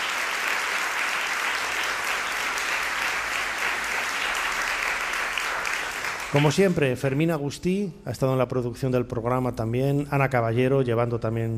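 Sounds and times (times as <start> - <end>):
audience applause: 0.0 - 7.3
speech: 6.3 - 11.5.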